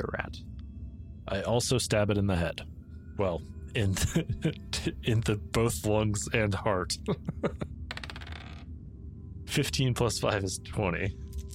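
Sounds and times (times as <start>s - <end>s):
speech: 0.0s - 0.6s, 1.3s - 7.8s, 9.5s - 11.2s
dice clicking: 7.9s - 8.6s
dice tumbling across a hard tabletop: 7.9s - 8.7s.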